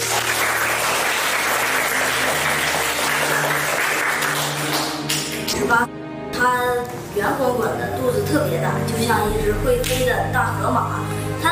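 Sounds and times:
audience applause: 0:00.0 - 0:05.6
speech: 0:05.7 - 0:11.5.

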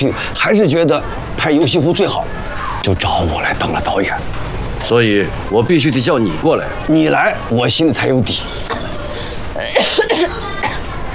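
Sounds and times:
speech: 0:00.0 - 0:08.9, 0:09.6 - 0:10.5
noise: 0:00.0 - 0:11.1
person coughing from cigarette smoke: 0:09.6 - 0:10.8.

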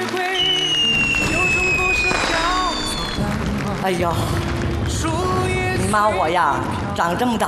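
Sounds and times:
fireworks crackling bursts: 0:00.0 - 0:05.9
fireworks whistling trails: 0:00.3 - 0:03.4
fireworks booms: 0:01.0 - 0:03.7
speech: 0:03.8 - 0:04.5, 0:05.9 - 0:07.4.

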